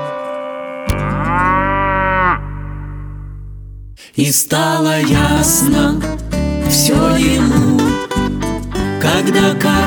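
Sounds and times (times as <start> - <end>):
cow mooing: 0.1 - 3.4
speech: 4.2 - 8.3, 9.2 - 9.8.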